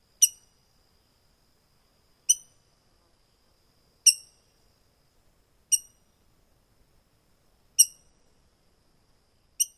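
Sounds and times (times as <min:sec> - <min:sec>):
rose-breasted grosbeak chink calls: 0:00.2 - 0:00.6, 0:02.3 - 0:02.6, 0:04.0 - 0:04.5, 0:05.7 - 0:06.1, 0:07.8 - 0:08.2, 0:09.6 - 0:09.7.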